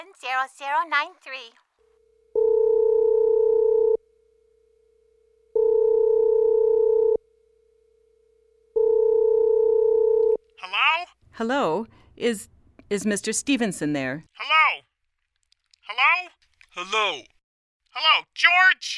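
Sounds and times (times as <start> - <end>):
speech: 0.2 - 1.6, 11.4 - 14.8, 15.9 - 17.4, 18.0 - 18.9
telephone ringing on a line to an office: 1.8 - 4.0, 4.7 - 7.3, 7.9 - 10.4.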